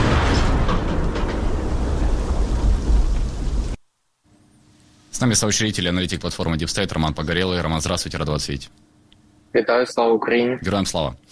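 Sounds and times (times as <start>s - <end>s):
artillery gun firing a shot: 0.0s - 3.5s
speech: 5.2s - 8.9s, 9.5s - 11.3s.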